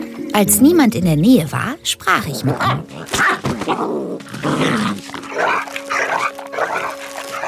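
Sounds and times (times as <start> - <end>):
speech: 0.4 - 5.8
tethered coyote growling and snarling in a village: 2.1 - 7.4.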